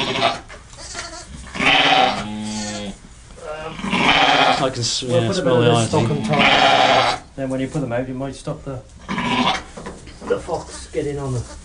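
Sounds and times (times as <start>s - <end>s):
large newborn lambs bleating while being handled: 0.0s - 3.0s, 3.7s - 4.7s, 5.5s - 7.3s, 9.0s - 9.7s
speech: 4.6s - 9.6s, 10.3s - 11.6s.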